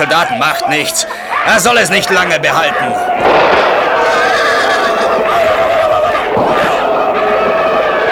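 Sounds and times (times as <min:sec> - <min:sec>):
speech: 0:00.0 - 0:03.7
battle commotion: 0:00.0 - 0:08.1
dense din of shouting voices: 0:00.0 - 0:08.1
laughter: 0:00.0 - 0:08.1
horse whinnying: 0:03.8 - 0:06.3.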